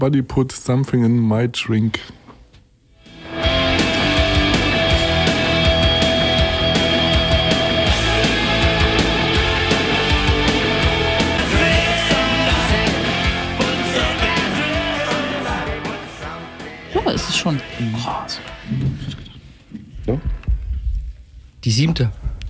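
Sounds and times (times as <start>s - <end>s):
speech: 0.0s - 2.2s, 17.3s - 19.2s, 20.0s - 20.4s, 21.6s - 22.4s
distorted guitars in a punk rock song: 3.0s - 20.6s.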